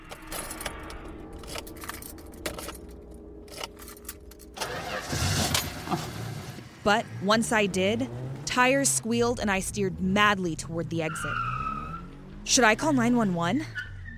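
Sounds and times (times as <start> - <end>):
car keys jingling and scraping in the ignition: 0.0 - 5.8
car engine cranking and turning over into a steady rumble: 0.0 - 14.1
speech: 6.9 - 11.5, 12.5 - 13.8.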